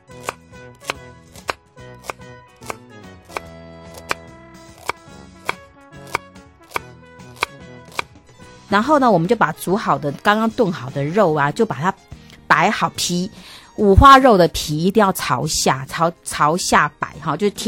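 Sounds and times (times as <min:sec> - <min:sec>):
soft tonal music: 0:00.0 - 0:17.6
knife chopping scallions on a board: 0:00.1 - 0:04.2, 0:04.8 - 0:08.1
speech: 0:08.7 - 0:12.0, 0:12.6 - 0:17.6.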